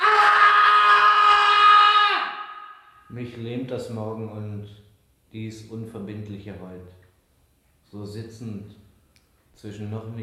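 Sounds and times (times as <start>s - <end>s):
man screaming at night: 0.0s - 3.0s
speech: 3.2s - 7.0s, 7.9s - 8.8s, 9.6s - 10.2s.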